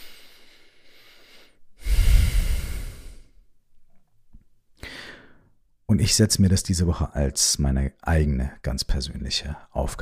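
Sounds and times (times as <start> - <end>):
deep breath during a guided relaxation exercise: 0.0 - 3.5, 4.8 - 5.6
speech: 5.9 - 9.9.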